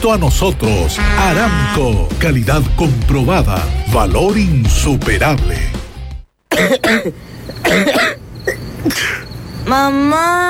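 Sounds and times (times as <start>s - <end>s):
speech: 0.0s - 5.8s, 6.6s - 8.2s, 8.8s - 10.4s
harsh rasping coughs: 6.5s - 9.2s.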